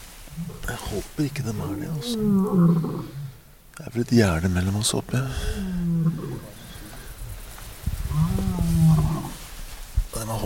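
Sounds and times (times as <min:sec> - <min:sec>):
lion roaring at night: 0:00.3 - 0:03.5, 0:05.2 - 0:07.2, 0:08.0 - 0:09.5
speech: 0:00.4 - 0:03.2, 0:03.8 - 0:06.2.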